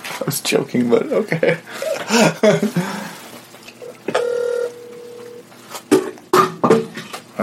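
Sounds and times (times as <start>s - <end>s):
speech: 0.2s - 3.1s
laughter: 1.4s - 3.2s
electronic phone keypad dialing tones: 4.1s - 5.4s.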